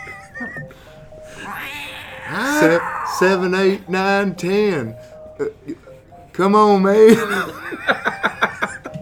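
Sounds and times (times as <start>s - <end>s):
laughter: 0.0s - 4.1s, 7.0s - 8.9s
faint hiss: 0.0s - 8.9s
speech: 0.4s - 5.8s, 6.4s - 8.1s
cat meowing: 1.3s - 3.7s.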